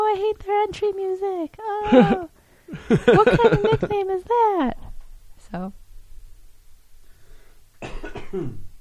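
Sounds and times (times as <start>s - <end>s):
speech: 0.1s - 2.3s, 2.9s - 4.8s, 5.5s - 5.8s, 8.3s - 8.7s
laughter: 1.9s - 4.1s
harsh coughing ending in a raspy throaty rattle: 7.8s - 8.7s.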